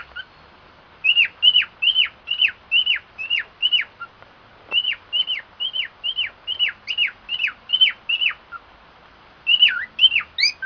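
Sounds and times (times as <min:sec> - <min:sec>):
white-faced cockatiel song of hooked whistles: 0:01.0 - 0:04.0, 0:04.8 - 0:08.4, 0:09.5 - 0:10.6.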